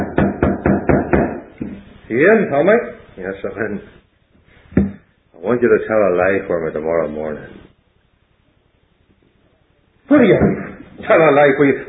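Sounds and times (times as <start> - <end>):
firm knocking on a door: 0.0 - 1.5
speech: 2.1 - 4.0, 5.4 - 7.6, 10.1 - 11.8.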